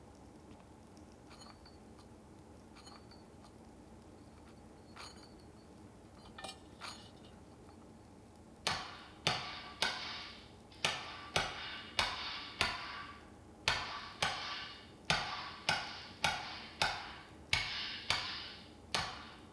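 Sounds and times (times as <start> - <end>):
metallic hammer blows on metal while forging a kitchen knife: 8.6 - 19.5.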